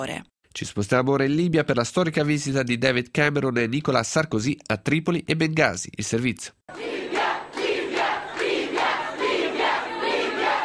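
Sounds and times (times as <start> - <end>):
speech: 0.0 - 7.0
crowd chanting: 6.7 - 10.6.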